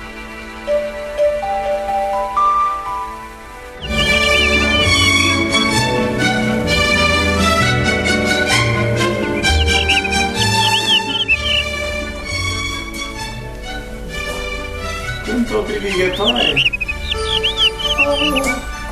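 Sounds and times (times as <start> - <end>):
loud steady musical backdrop: 0.0 - 18.9
nightingale singing: 3.8 - 6.1, 8.4 - 12.7, 15.0 - 18.9.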